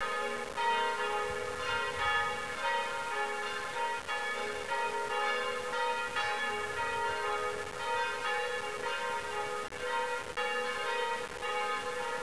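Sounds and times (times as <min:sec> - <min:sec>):
bells ringing: 0:00.0 - 0:12.2.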